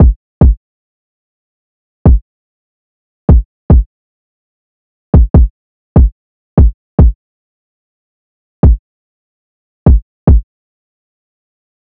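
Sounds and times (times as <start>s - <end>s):
kick drum loop: 0.0s - 0.6s, 2.0s - 2.2s, 3.3s - 3.9s, 5.2s - 7.2s, 8.6s - 8.8s, 9.9s - 10.5s.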